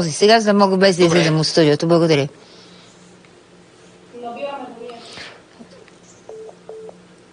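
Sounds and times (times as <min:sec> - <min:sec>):
speech: 0:00.0 - 0:02.5
telephone keypad dialing tones: 0:06.3 - 0:07.0.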